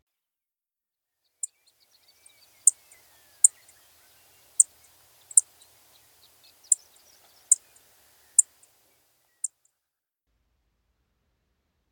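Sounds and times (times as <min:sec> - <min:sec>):
clay-colored sparrow call notes: 0:01.4 - 0:09.0.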